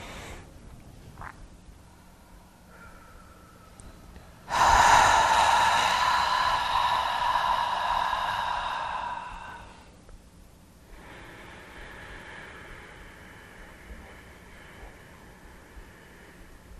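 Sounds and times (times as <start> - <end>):
person inhaling in a deep cleansing breath during a relaxation exercise: 0.0 - 0.5, 4.5 - 10.0, 10.9 - 16.7
long full exhale during a relaxation exercise: 4.5 - 10.0, 10.9 - 16.7.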